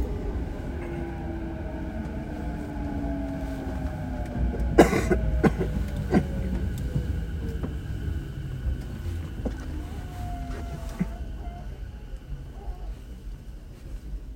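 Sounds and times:
moving train rumble inside carriage: 0.0 - 14.3
person coughing in crowded train carriage: 4.7 - 6.4.

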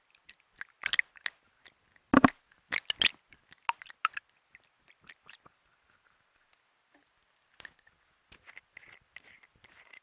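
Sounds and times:
crisp crinkles from making homemade stress balls: 0.1 - 10.0
squishy pops from making homemade stress balls: 2.2 - 3.1.

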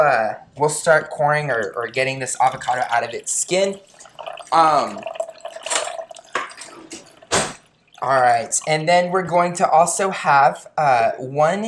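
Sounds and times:
speech: 0.0 - 5.2, 8.0 - 11.6
coconut water poured into a pitcher: 1.5 - 9.1.

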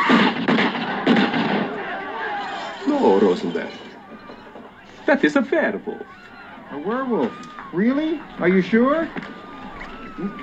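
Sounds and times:
gunshots firing silver bullets: 0.0 - 2.6
speech: 3.1 - 3.9, 5.1 - 9.4, 10.2 - 10.4.

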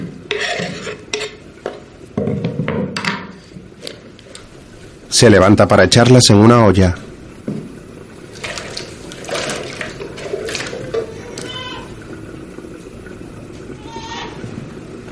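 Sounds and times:
hiss: 0.0 - 15.1
speech: 5.2 - 7.1
baby crying: 11.0 - 12.0, 13.8 - 14.5.

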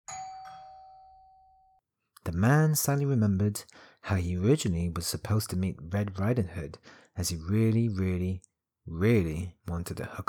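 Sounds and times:
doorbell ding-dong chime: 0.1 - 1.8
speech: 2.4 - 10.2.

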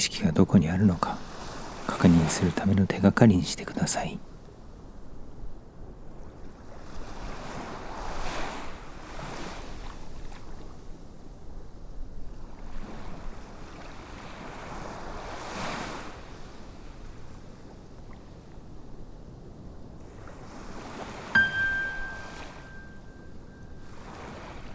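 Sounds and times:
speech: 0.0 - 1.2, 1.9 - 4.3
ocean waves breaking on a beach: 0.0 - 24.7
bright meditation cue chime: 21.4 - 23.4.

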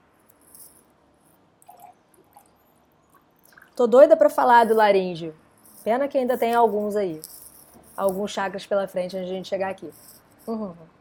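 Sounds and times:
sipping water: 1.6 - 3.8
small liquid squishes: 1.6 - 3.8
soft water drips: 1.6 - 3.8
speech: 3.8 - 7.4, 8.0 - 10.9.

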